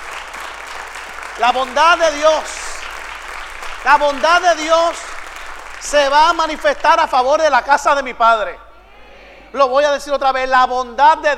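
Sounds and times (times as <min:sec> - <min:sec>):
congregation clapping: 0:00.0 - 0:07.6
speech: 0:01.4 - 0:02.6, 0:03.8 - 0:05.0, 0:05.8 - 0:08.6, 0:09.5 - 0:11.3.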